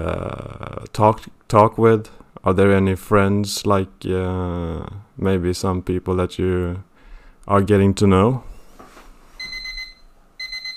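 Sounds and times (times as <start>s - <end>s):
speech: 0.0s - 6.9s, 7.5s - 8.5s
electronic alarm ringing with a high-pitched tone: 9.4s - 10.7s.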